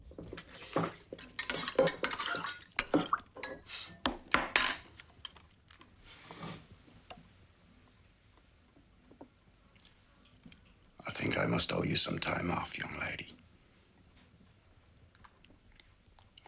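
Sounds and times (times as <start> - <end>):
utensil clinking and knocking against a bowl while stirring: 0.3 - 4.9
speech: 11.7 - 13.4.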